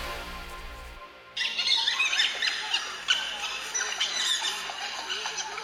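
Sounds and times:
dholes calling with high-pitched squeals and chirps: 1.3s - 5.6s.

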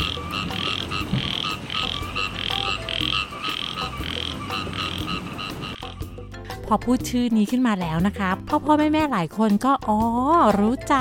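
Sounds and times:
small frogs and tree frogs calling for mates: 0.0s - 6.2s
speech: 6.7s - 10.9s.

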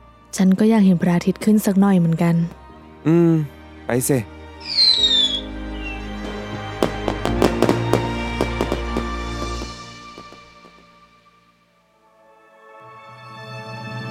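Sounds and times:
speech: 0.4s - 4.9s
whistling firework rocket climbing: 4.6s - 11.0s
fireworks bursting and crackling: 4.8s - 11.3s.

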